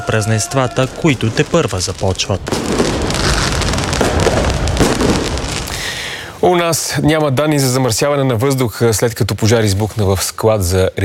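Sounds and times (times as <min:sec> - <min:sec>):
speech: 0:00.0 - 0:03.5, 0:06.4 - 0:11.0
fireworks bursting in a dense barrage: 0:00.0 - 0:07.7.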